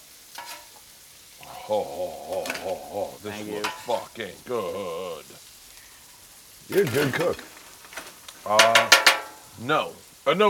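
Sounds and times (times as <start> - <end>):
frozen steak frying in a pan: 0.0 - 10.4
laughter: 1.4 - 5.4
speech: 1.7 - 5.4, 6.7 - 7.5, 8.4 - 9.0, 9.6 - 10.4.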